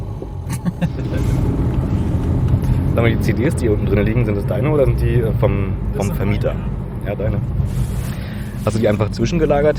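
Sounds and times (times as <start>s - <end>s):
car cabin hum: 0.0s - 4.6s
car engine rumble inside a slowly moving car: 0.0s - 9.7s
speech: 3.0s - 8.0s, 8.6s - 9.7s.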